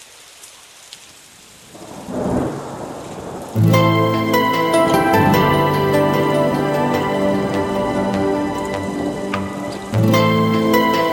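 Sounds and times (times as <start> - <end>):
rain falling outside: 0.0 - 11.1
low thundery rumble of a storm: 1.8 - 3.8
music with sustained tones: 3.6 - 11.1.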